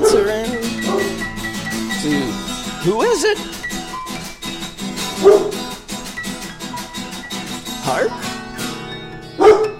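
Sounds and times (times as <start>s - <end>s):
rhythmic musical beat: 0.0s - 9.7s
speech: 2.8s - 3.6s
dog bark: 5.2s - 5.6s, 9.4s - 9.7s.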